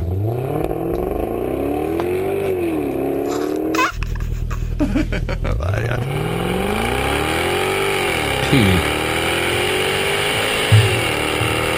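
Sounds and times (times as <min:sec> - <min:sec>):
lazily revving V8 engine with automatic transmission: 0:00.0 - 0:11.7
laughter: 0:03.3 - 0:06.0
speech: 0:08.5 - 0:08.9
brief thumps: 0:10.6 - 0:11.7.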